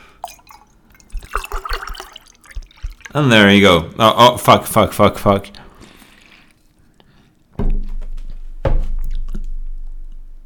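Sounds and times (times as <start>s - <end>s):
milk pouring into a glass: 0.2s - 3.2s
speech: 3.1s - 5.6s.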